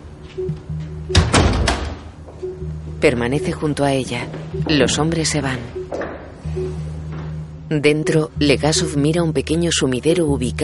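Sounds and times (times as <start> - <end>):
speech: 0.4 - 1.6, 2.4 - 6.9, 7.7 - 10.6
door swinging shut with latch rattle: 1.2 - 2.0.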